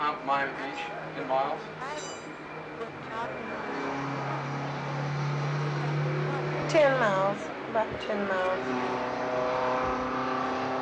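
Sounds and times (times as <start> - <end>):
speech: 0.2 - 4.2, 6.7 - 9.1
heavy vehicle engine rumbling past outside: 2.4 - 10.8.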